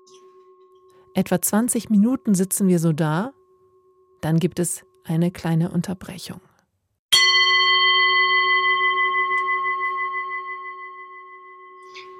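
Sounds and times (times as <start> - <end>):
speech: 1.2 - 3.4, 4.2 - 6.5
meditation gong ringing: 7.2 - 12.1.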